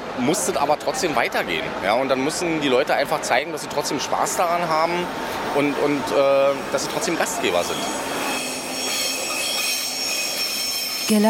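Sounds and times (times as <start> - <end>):
speech: 0.2 - 8.2, 11.1 - 11.2
EuroCity train pulling into a station: 1.2 - 11.2
EuroCity train wheel squeal: 5.8 - 11.2.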